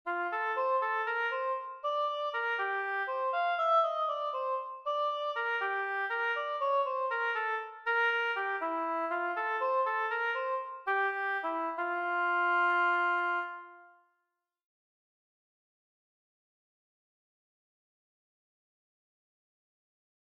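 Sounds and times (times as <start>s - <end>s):
oboe: 0.1s - 14.0s.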